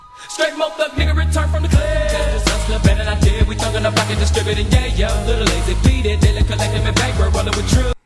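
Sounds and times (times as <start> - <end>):
bright synthetic melody sampled from a video game: 0.0 - 7.8
old-school rap track with melody sampled from a Sega video game: 0.1 - 8.0
heavy bassline: 1.0 - 8.0
punchy steady drum hits: 1.8 - 7.0.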